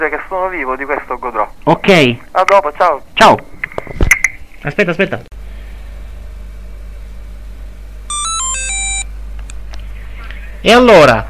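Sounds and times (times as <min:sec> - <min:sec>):
speech: 0:00.0 - 0:03.6, 0:04.6 - 0:05.3, 0:10.6 - 0:11.2
low hum: 0:00.0 - 0:11.2
telephone ringing with a quick electronic melody: 0:08.1 - 0:09.1.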